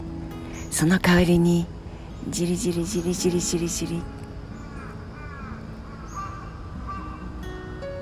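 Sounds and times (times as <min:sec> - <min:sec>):
steady hum of outdoor noise: 0:00.0 - 0:08.0
speech: 0:00.7 - 0:04.2
crow cawing in the morning: 0:04.6 - 0:07.6.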